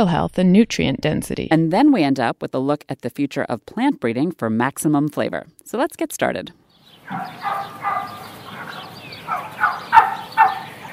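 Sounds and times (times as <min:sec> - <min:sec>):
speech: 0:00.0 - 0:08.3
steady outdoor hiss: 0:06.6 - 0:10.9
turkeys gobbling: 0:06.8 - 0:10.9.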